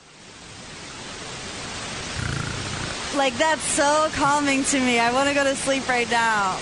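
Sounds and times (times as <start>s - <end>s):
white noise hissing from a speaker: 0.0s - 6.6s
speech: 3.2s - 6.6s.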